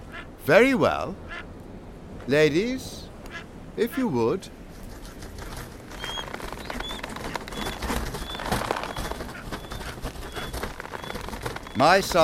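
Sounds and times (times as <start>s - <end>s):
speech: 0.5s - 1.5s, 2.3s - 3.0s, 3.8s - 4.6s, 11.8s - 12.2s
rustling crackling noise: 4.6s - 12.2s
small birds chirping: 5.5s - 12.2s.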